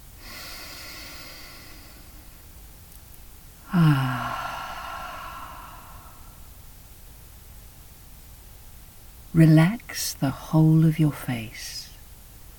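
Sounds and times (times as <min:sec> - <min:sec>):
slow deep inhale-exhale during a guided relaxation: 0:00.0 - 0:02.4, 0:03.6 - 0:06.5
speech: 0:03.7 - 0:04.2, 0:09.4 - 0:11.8.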